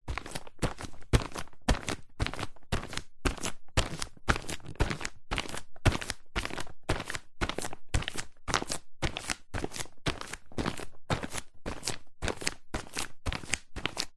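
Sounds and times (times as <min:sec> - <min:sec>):
barefoot footsteps walking on plastic sheet: 0:00.1 - 0:14.1.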